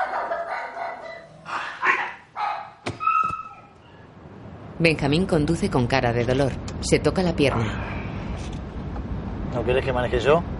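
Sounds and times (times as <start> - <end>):
dog barking excitedly while chasing people: 0.0 - 3.8
speech: 4.8 - 8.6, 9.5 - 10.5.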